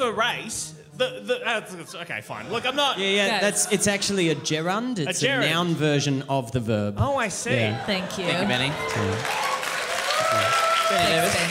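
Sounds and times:
speech: 0:00.0 - 0:09.5, 0:10.3 - 0:11.4
live audience applause: 0:07.6 - 0:11.4.

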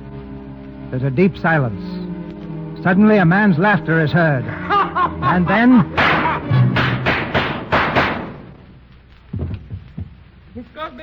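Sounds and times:
speech: 0:00.9 - 0:02.0, 0:02.8 - 0:06.2, 0:10.7 - 0:11.0
laughter: 0:04.4 - 0:06.8
heavy thud: 0:06.0 - 0:08.6, 0:09.3 - 0:10.4
rapid gunshots at night in a shuttered plantation house: 0:06.0 - 0:08.6.

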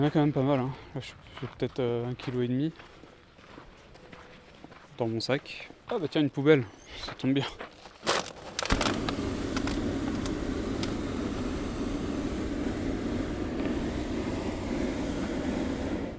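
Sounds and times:
speech: 0:00.0 - 0:03.0, 0:05.0 - 0:08.2
crinkling clatters: 0:07.7 - 0:10.9
hot air balloon burner roaring: 0:08.6 - 0:16.1.

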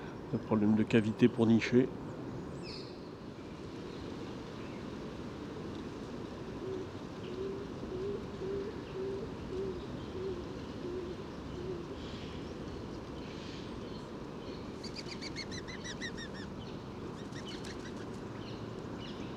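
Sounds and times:
steady outdoor hum: 0:00.0 - 0:19.3
speech: 0:00.3 - 0:02.0
stock dove cooing: 0:06.5 - 0:12.2.

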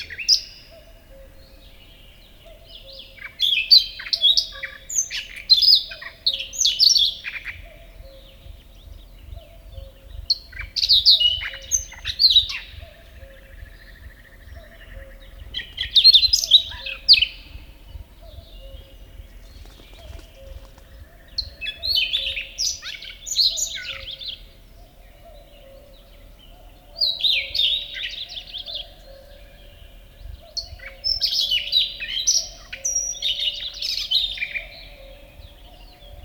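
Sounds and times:
distant cuckoo calls: 0:00.0 - 0:36.2
single songbird singing: 0:00.0 - 0:36.2
low rumble: 0:07.6 - 0:21.9.

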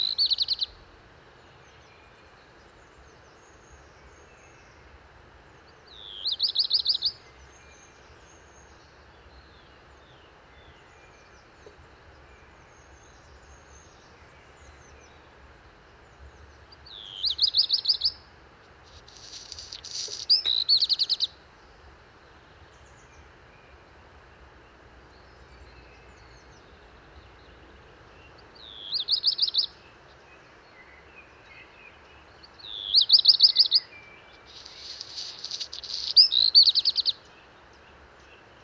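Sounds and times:
black redstart Phoenicurus ochruros singing from a high perch: 0:00.0 - 0:00.8, 0:06.0 - 0:07.4, 0:16.8 - 0:18.2, 0:18.8 - 0:21.4, 0:28.3 - 0:38.5.

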